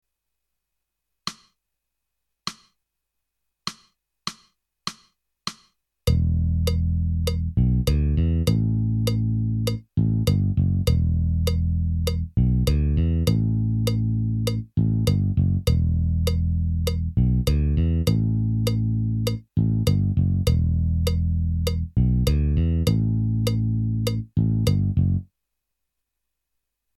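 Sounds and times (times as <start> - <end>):
metronome ticking quarter notes: 3.7 - 25.0.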